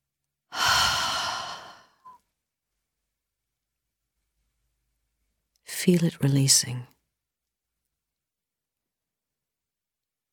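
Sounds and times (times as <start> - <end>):
long exhaled breath during a relaxation exercise: 0.5 - 2.1
speech: 5.8 - 7.0.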